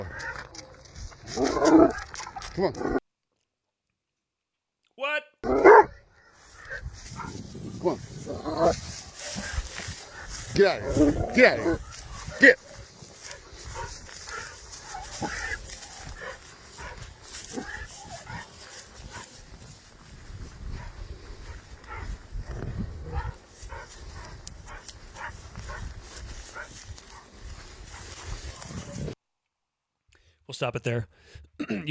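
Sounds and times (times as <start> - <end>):
speech: 1.3 - 3.0, 10.6 - 11.8, 12.4 - 12.6, 30.6 - 31.8
dog barking while being walked: 1.4 - 3.0, 5.4 - 19.8, 20.4 - 22.3, 22.9 - 29.2
steady rough noise: 5.4 - 29.2.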